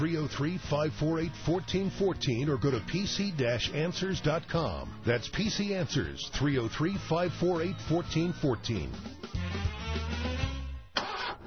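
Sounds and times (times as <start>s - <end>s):
speech: 0.0s - 9.8s
car engine cranking and failing to start: 9.8s - 11.4s.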